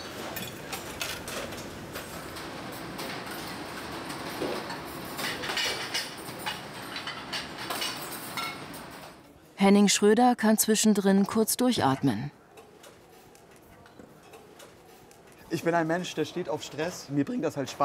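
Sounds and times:
dishes clinking and clattering: 0.0 - 9.2, 11.7 - 15.4
speech: 9.6 - 12.4, 15.5 - 17.8.

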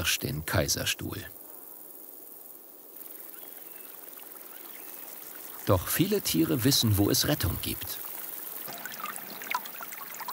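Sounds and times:
speech: 0.0 - 1.4, 5.7 - 8.1
spring water trickling and bubbling over rock: 8.7 - 10.3.

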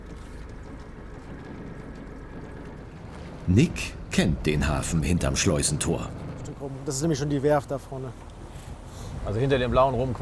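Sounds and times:
small motorboat engine droning on the Elbe: 0.0 - 10.1
speech: 3.5 - 8.3, 9.2 - 10.1.

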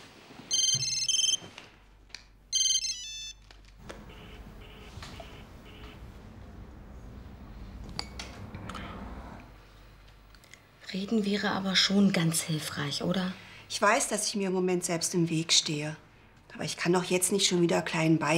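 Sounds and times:
mobile phone ringtone with bright electronic tones: 0.5 - 1.5, 2.5 - 3.4, 4.1 - 6.0
speech: 11.0 - 18.3.

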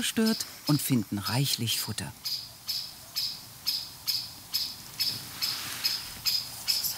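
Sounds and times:
speech: 0.0 - 2.5
faint hiss: 0.0 - 6.9
blackbird scolding call: 2.2 - 6.9.

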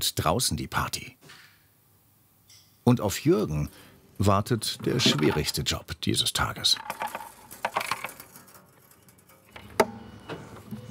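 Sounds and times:
speech: 0.0 - 1.4, 2.9 - 7.2
loose small change rattling inside a container: 6.7 - 9.6.

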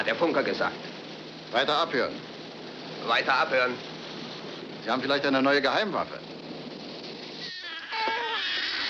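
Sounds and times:
speech: 0.0 - 2.3, 3.0 - 3.9, 4.8 - 6.4
babies crying aboard a submarine: 7.4 - 8.8.

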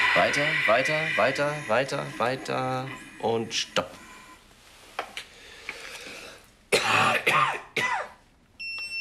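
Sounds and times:
speech: 0.1 - 4.0
harsh throaty coughing: 6.7 - 8.2.

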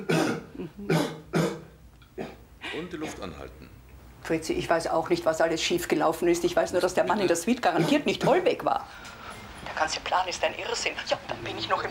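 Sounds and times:
speech: 0.0 - 1.2, 2.2 - 9.2, 9.8 - 11.8
person coughing: 0.0 - 3.4.

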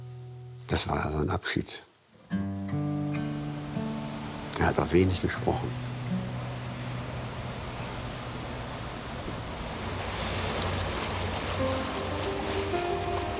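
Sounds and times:
rushing water like a boat moving through water: 0.0 - 13.3
speech: 0.7 - 2.6, 4.6 - 5.9
low engine-like hum: 3.6 - 13.3.

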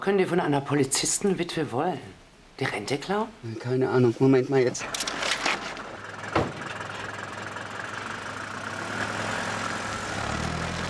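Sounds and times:
speech: 0.0 - 5.2
taxi engine rumbling as the car drives off: 4.9 - 10.8.

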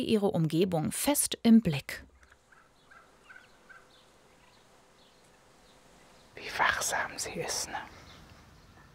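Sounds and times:
speech: 0.0 - 2.1, 6.4 - 8.0
faint hiss: 0.0 - 8.9
Ronquière turkey hen clucking softly to lure her chicks: 2.2 - 4.6.

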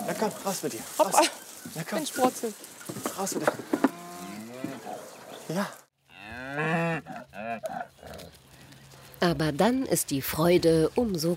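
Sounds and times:
speech: 0.1 - 3.9, 4.6 - 5.8, 6.6 - 7.9, 9.2 - 11.3
cattle mooing as a cow and bull calf rejoin their herd: 3.7 - 5.1, 6.1 - 8.3.

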